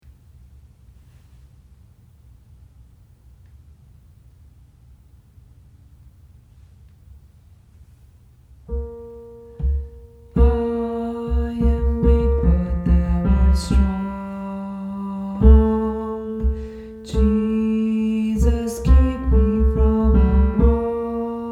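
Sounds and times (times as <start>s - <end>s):
tenor instrument playing a hymn: 8.7s - 21.5s.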